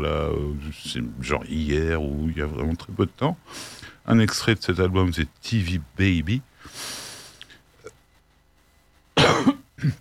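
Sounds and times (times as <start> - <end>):
speech: 0.0 - 7.0
quiet breathing: 3.4 - 4.1, 6.5 - 7.9
person coughing harshly: 9.2 - 9.9.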